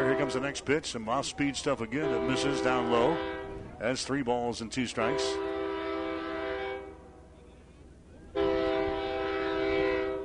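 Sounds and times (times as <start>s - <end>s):
passing train horn blasts: 0.0s - 0.6s, 2.0s - 3.7s, 5.0s - 7.1s, 8.3s - 10.2s
passing train rumbling: 0.0s - 10.2s
speech: 0.2s - 5.5s.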